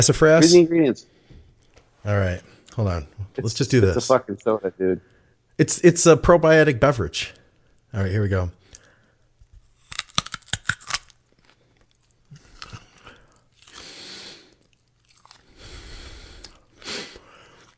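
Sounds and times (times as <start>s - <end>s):
speech: 0.0s - 1.2s, 2.0s - 8.6s
crunchy chewing of food: 9.7s - 17.7s.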